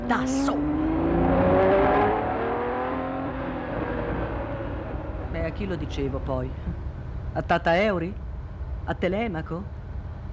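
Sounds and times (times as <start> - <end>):
big-displacement motorbike engine revving: 0.0 - 5.3
speech: 0.1 - 0.9, 5.5 - 8.2, 8.8 - 9.8.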